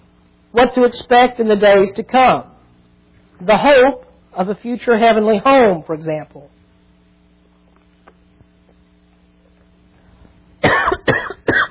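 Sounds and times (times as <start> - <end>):
speech: 0.5 - 2.5, 3.4 - 6.6
person coughing: 10.6 - 11.6
throat clearing: 10.6 - 11.6.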